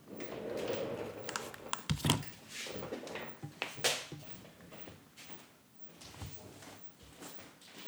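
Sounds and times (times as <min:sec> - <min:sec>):
someone getting up from a chair: 0:00.0 - 0:05.0, 0:06.0 - 0:07.3
shuffling footsteps around a kitchen island: 0:00.6 - 0:05.3, 0:06.0 - 0:07.4
paper rustling: 0:00.8 - 0:04.9, 0:06.0 - 0:07.3
letter opener slitting open a paper envelope: 0:00.9 - 0:04.7
household clicks and knocks: 0:01.1 - 0:04.8.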